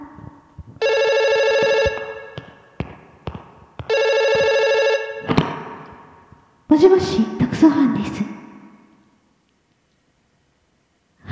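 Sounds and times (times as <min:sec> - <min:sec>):
telephone ringing in electronic bursts: 0:00.8 - 0:02.8, 0:03.9 - 0:05.3
speech: 0:06.8 - 0:07.3.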